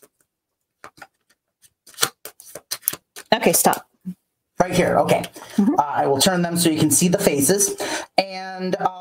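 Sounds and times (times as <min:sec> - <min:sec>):
tarot cards being shuffled: 0:00.0 - 0:03.8
speech: 0:03.4 - 0:08.0, 0:08.6 - 0:08.9.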